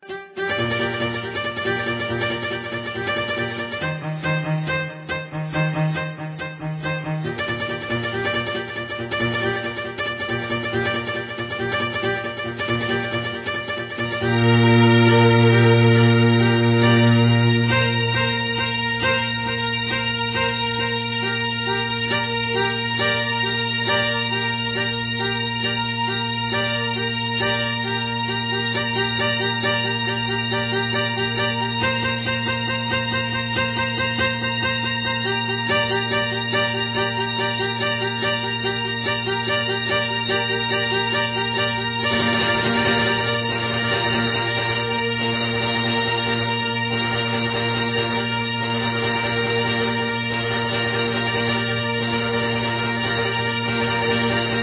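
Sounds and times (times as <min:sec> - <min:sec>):
classical music: 0:00.0 - 0:54.6.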